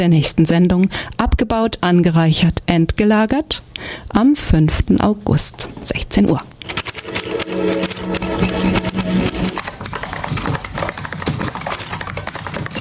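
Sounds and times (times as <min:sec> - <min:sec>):
speech: 0:00.0 - 0:09.7
rapid irregular clacking of typewriter keys: 0:06.6 - 0:12.7
tonal musical background: 0:06.7 - 0:09.8.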